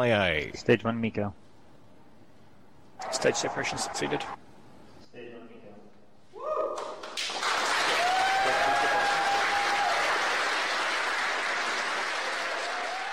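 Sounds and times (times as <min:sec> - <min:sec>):
speech: 0:00.0 - 0:01.5, 0:03.2 - 0:04.4
people cheering and whooping: 0:06.4 - 0:07.1, 0:07.8 - 0:10.4, 0:12.2 - 0:13.1
crowd clapping in a mission control room: 0:06.8 - 0:13.1.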